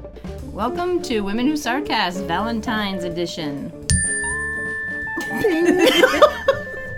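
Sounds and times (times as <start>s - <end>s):
speech: 0.6s - 3.8s, 5.4s - 6.4s
chime ringing: 3.9s - 6.9s
people laughing: 5.2s - 6.9s.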